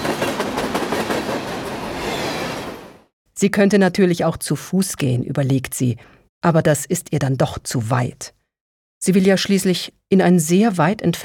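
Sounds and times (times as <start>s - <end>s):
train wheels clacking on rails: 0.0s - 2.8s
speech: 3.4s - 8.4s, 9.0s - 11.2s.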